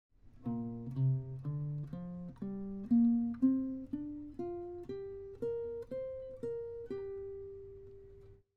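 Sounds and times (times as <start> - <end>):
guitar playing a G minor pentatonic scale in shape 2: 0.4 - 8.3.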